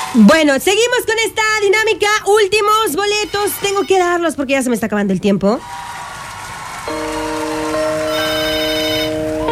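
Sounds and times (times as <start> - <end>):
speech: 0.1 - 5.9
ringtone of an incoming WhatsApp call: 6.9 - 9.4.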